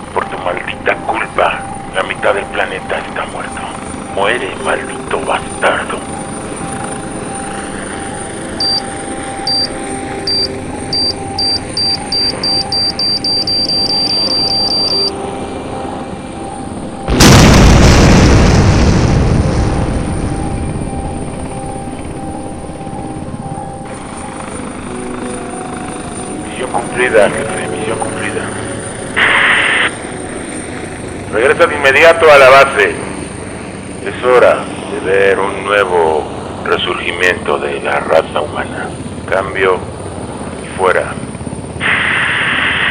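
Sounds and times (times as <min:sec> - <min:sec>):
aircraft engine drone: 0:00.0 - 0:42.8
speech: 0:00.8 - 0:06.2, 0:31.8 - 0:33.0, 0:34.2 - 0:39.9, 0:40.8 - 0:41.2
short high beeps: 0:08.6 - 0:09.7, 0:10.3 - 0:15.1
bomb dropped from an aircraft exploding: 0:17.1 - 0:20.9.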